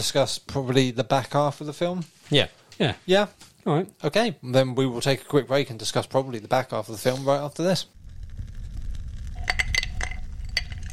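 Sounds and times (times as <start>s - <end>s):
speech: 0.0s - 8.0s
low rumbling background: 7.9s - 10.9s
handcrafted resin dice clinking against a glass by a fire: 9.4s - 10.9s.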